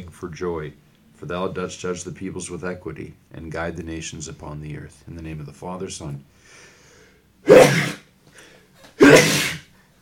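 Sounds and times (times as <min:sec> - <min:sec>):
speech: 0:00.2 - 0:06.7, 0:07.4 - 0:08.0
quiet breathing: 0:06.3 - 0:07.4, 0:08.2 - 0:08.8
person sneezing: 0:07.4 - 0:08.1, 0:08.8 - 0:09.7.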